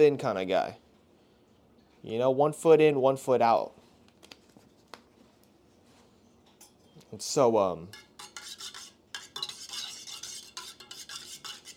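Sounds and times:
speech: 0:00.0 - 0:00.8, 0:02.0 - 0:03.8, 0:07.1 - 0:08.0
spoon stirring coffee in a mug: 0:07.9 - 0:11.7.

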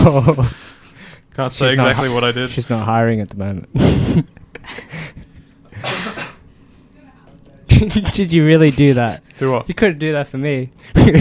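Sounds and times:
speech: 0:00.1 - 0:00.7, 0:01.4 - 0:05.2, 0:07.8 - 0:11.1
person coughing with short breathy coughs: 0:05.7 - 0:06.4.

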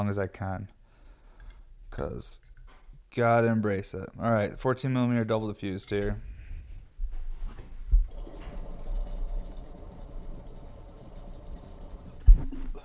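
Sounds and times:
speech: 0:00.0 - 0:00.8, 0:01.9 - 0:02.5, 0:03.1 - 0:06.3
water bubbling through a water pipe: 0:08.1 - 0:12.8.

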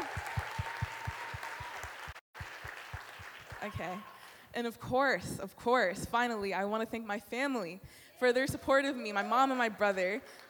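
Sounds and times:
audience applause: 0:00.0 - 0:04.1
speech: 0:03.6 - 0:10.4.

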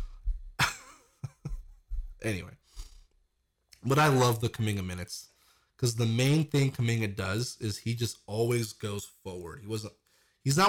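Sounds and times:
speech: 0:02.2 - 0:02.6, 0:03.8 - 0:10.6
person faking a cough: 0:03.9 - 0:04.4.

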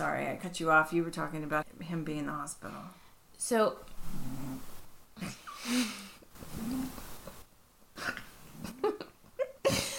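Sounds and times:
speech: 0:00.0 - 0:07.0
cat snoring: 0:04.0 - 0:04.7, 0:06.5 - 0:07.0.

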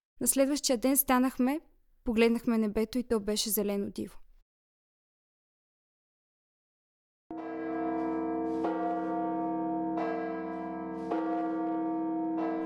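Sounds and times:
speech: 0:00.2 - 0:04.2
church bells ringing: 0:07.3 - 0:12.6.

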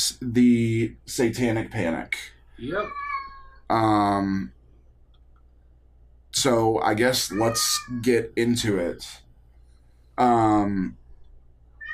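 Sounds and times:
speech: 0:00.0 - 0:03.0, 0:03.7 - 0:04.6, 0:06.3 - 0:09.2, 0:10.2 - 0:11.0
faint noise: 0:00.0 - 0:11.9
cat meowing: 0:02.6 - 0:03.6, 0:07.3 - 0:08.2.

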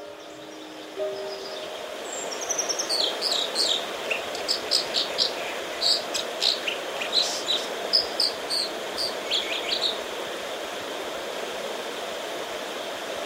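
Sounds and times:
American Dipper song with high sharp chirps: 0:00.0 - 0:10.0
steady background noise: 0:00.0 - 0:13.2.

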